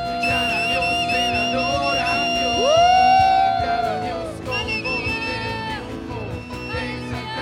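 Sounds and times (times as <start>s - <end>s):
audience shouting and cheering in worship: 0.0s - 7.4s
rising whoop: 2.2s - 4.3s.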